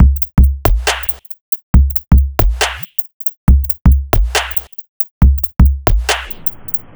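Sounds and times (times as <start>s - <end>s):
dubstep drum loop: 0.0s - 6.9s
turntablist break at 138 BPM: 0.0s - 6.9s.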